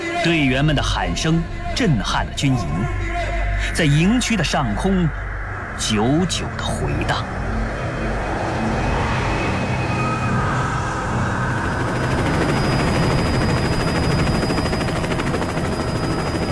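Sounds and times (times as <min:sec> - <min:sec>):
speech: 0:00.2 - 0:07.5
transport plane propellers spinning rapidly at a military airfield: 0:05.0 - 0:16.5.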